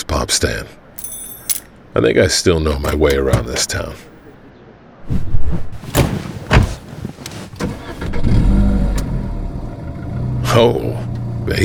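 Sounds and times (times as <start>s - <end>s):
speech: 0.2s - 0.8s, 2.0s - 4.1s, 10.6s - 11.6s
clunks: 1.0s - 1.8s, 2.7s - 4.2s, 5.8s - 8.2s
car door thudding shut: 2.7s - 4.0s, 5.8s - 7.5s
car starter cranking and engine settling into low idle: 2.7s - 4.1s, 5.9s - 11.6s.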